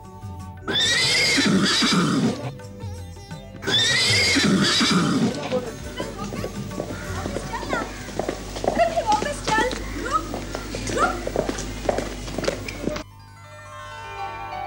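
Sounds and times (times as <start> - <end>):
horse neighing: 0.6 - 2.5, 3.6 - 11.8
faint voices: 4.3 - 13.0.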